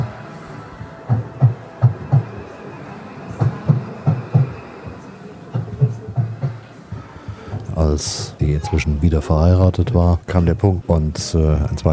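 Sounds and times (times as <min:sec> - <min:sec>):
train rolling along the tracks heard from inside the carriage: 0:00.0 - 0:08.4
speech: 0:07.9 - 0:11.9.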